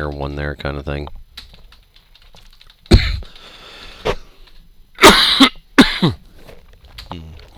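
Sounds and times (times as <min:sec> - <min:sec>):
speech: 0:00.0 - 0:01.2, 0:06.0 - 0:06.2
person coughing: 0:02.9 - 0:03.3, 0:05.0 - 0:06.3
throat clearing: 0:02.9 - 0:03.4, 0:05.0 - 0:06.3.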